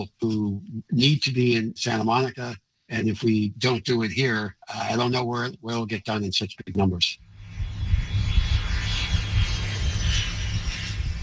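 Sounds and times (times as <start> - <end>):
speech: 0.0 - 7.2
airplane engine roar taking off at the airport in Santa Monica: 7.2 - 11.2.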